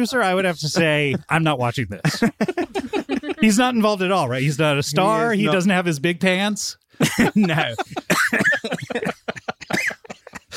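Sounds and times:
laughter: 0.0s - 5.6s, 7.0s - 10.5s
speech: 0.0s - 9.0s
person coughing in a rapid fit: 7.2s - 10.5s.

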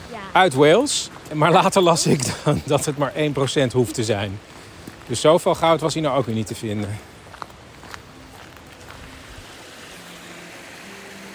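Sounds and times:
water running down near old mines: 0.0s - 11.3s
speech: 0.2s - 7.1s.

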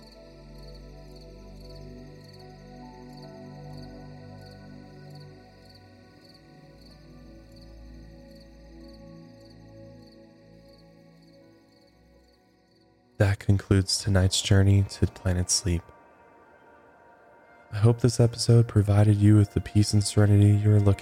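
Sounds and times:
crickets chirping at night: 0.0s - 21.0s
speech: 13.2s - 16.0s, 17.8s - 21.0s.

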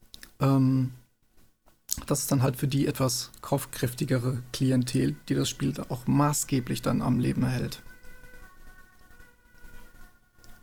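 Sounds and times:
speech: 0.4s - 1.0s, 2.0s - 7.9s
ambulance siren wailing outside: 5.8s - 10.6s.

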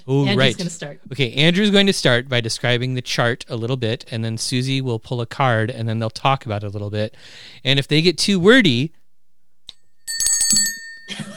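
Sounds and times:
speech: 0.0s - 9.0s
small hand bell ringing: 9.8s - 11.3s.

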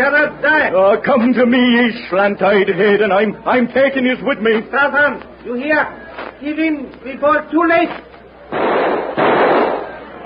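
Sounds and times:
speech: 0.0s - 9.3s
rifle gunshots: 8.5s - 10.0s.

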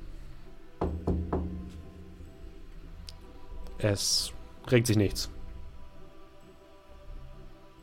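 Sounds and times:
firm knocking on a door: 0.8s - 2.1s
speech: 3.8s - 5.4s.

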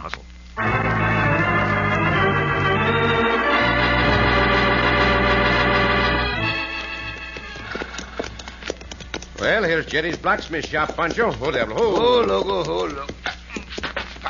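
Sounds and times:
loud full musical backdrop: 0.6s - 8.5s
horses' hooves clip-clopping: 4.8s - 14.2s
speech: 9.8s - 13.2s.

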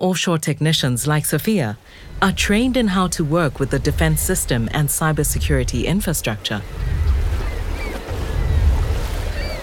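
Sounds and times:
speech: 0.0s - 7.0s
crew boat engine rumbling on the open North Sea: 0.8s - 9.6s
rushing waves on the open North Sea: 1.0s - 9.6s
wind buffeting the microphone: 1.8s - 9.6s.

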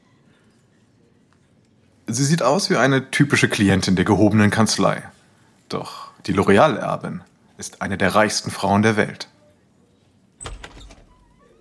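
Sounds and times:
speech: 2.1s - 9.3s
sharp door latch click: 10.4s - 11.4s
door to the foyer of a law firm opening: 10.4s - 11.5s.

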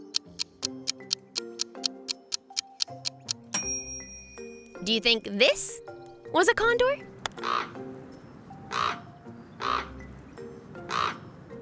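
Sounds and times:
speech: 4.8s - 7.8s
common raven croaking caws: 7.4s - 7.9s, 8.6s - 10.1s, 10.8s - 11.4s.

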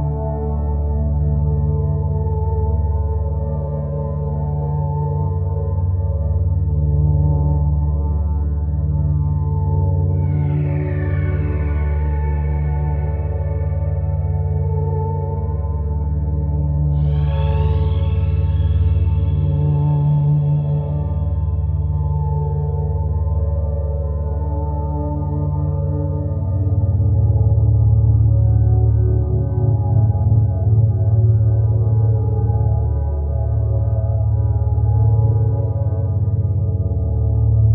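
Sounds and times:
steady low humming drone of stacked tones near 432 hz: 0.0s - 37.7s.

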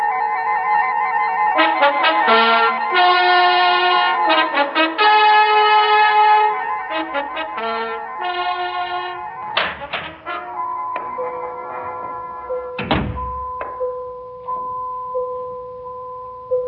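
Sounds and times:
steady ringing tones from a phone: 0.0s - 16.6s
door being opened: 9.4s - 13.9s
wooden clunks of a door: 9.6s - 12.2s, 12.8s - 13.8s
heavy thud: 11.0s - 13.8s.

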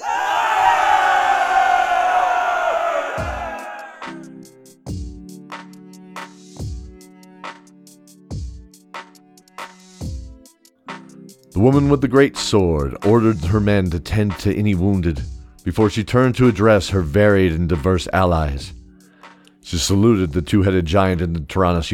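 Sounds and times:
large group of soldiers cheering in victory: 0.0s - 4.2s
slow heavy drum beats: 3.0s - 4.2s
speech: 11.6s - 18.8s, 19.7s - 21.9s.

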